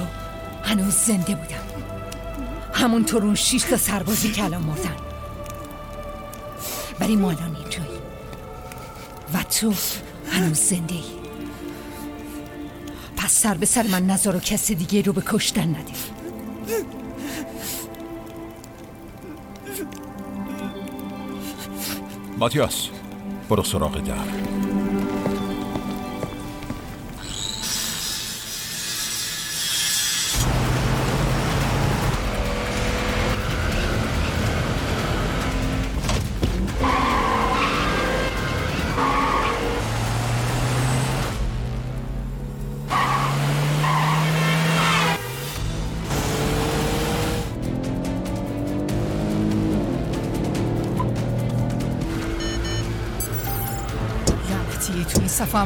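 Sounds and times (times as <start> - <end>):
rain on the road: 0.0 - 28.7, 30.3 - 55.6
speech: 0.7 - 2.0, 2.8 - 5.1, 7.0 - 8.0, 9.3 - 11.2, 13.4 - 17.0, 22.4 - 22.9, 23.5 - 25.3
tires skidding and squealing: 27.2 - 41.4, 42.7 - 53.1
car engines revving in a car chase: 30.3 - 55.6.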